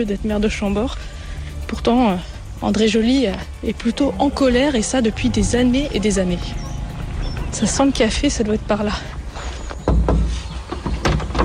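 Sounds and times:
speech: 0.0 - 6.7, 7.5 - 9.2
knocks on a door: 9.9 - 11.4.

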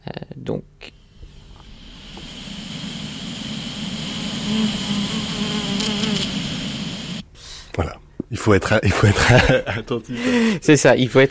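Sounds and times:
speech: 0.5 - 0.7, 8.4 - 11.2
bee buzzing in a sunflower field: 1.0 - 7.2.

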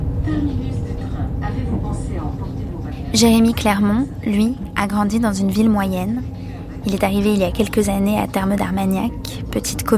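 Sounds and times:
TER regional train arriving at a station: 0.0 - 8.4
speech: 3.1 - 9.9.

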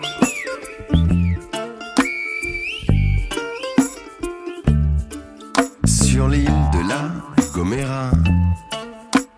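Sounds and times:
shrill human whistles in the Silbo whistled language: 0.0 - 4.0
rhythmic backing music of low thumping beats and busy instruments: 0.0 - 9.3.

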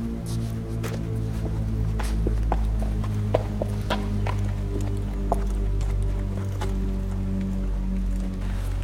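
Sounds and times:
constant low rumble of noise: 0.0 - 8.8
horse walking past, hooves clip-clopping: 0.0 - 8.8.

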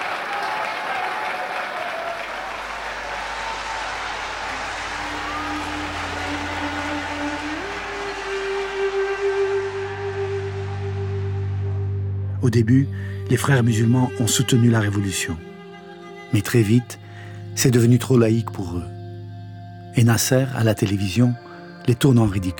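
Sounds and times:
crowd applauding revolutionary leaders in uniform: 0.0 - 12.2
crowd cheering revolutionary leaders: 0.0 - 15.0
rising tonal music: 2.7 - 22.5
speech: 12.4 - 15.5, 16.3 - 19.0, 20.0 - 22.5.

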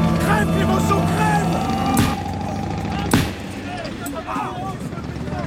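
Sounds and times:
murmur: 0.1 - 5.4
gunshot fired at a passing limousine: 2.0 - 2.2, 3.1 - 3.6.

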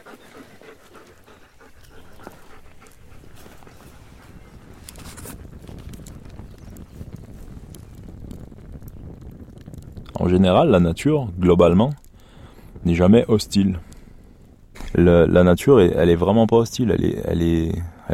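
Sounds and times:
dog panting after being told to lie down: 0.0 - 6.2
speech: 10.2 - 12.0, 12.8 - 13.9, 15.0 - 18.1.

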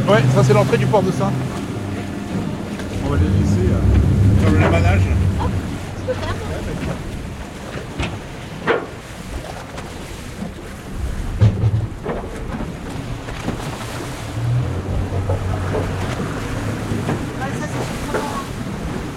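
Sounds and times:
low engine-like hum: 0.0 - 8.6, 10.6 - 19.1
speech: 0.1 - 1.6, 3.0 - 5.2
steady wind rushing past a boat moored at the quay: 1.7 - 8.4, 10.7 - 16.8
knocks and bumps from a moored boat's hull and rigging: 3.8 - 19.0.

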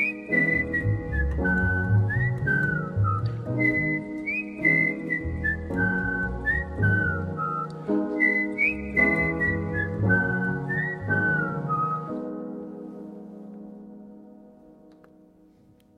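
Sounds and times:
person whistling a smooth gliding melody in a live performance: 0.0 - 12.3
piano accompaniment shifting chords: 0.0 - 15.9.

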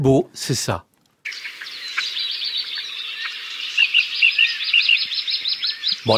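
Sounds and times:
speech: 0.0 - 0.9
small birds chirping and singing: 1.2 - 6.1.

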